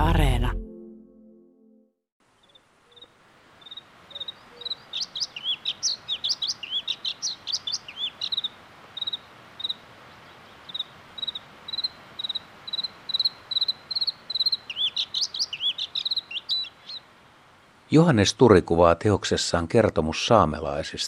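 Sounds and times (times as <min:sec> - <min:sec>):
bluethroat song with twisting trills and ringing chirps: 0:02.4 - 0:17.1
speech: 0:17.9 - 0:21.0.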